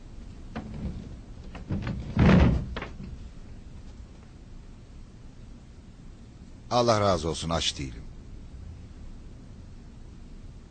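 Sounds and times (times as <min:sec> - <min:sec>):
door shutting with a solid thunk: 0:00.6 - 0:03.2
speech: 0:06.7 - 0:08.1.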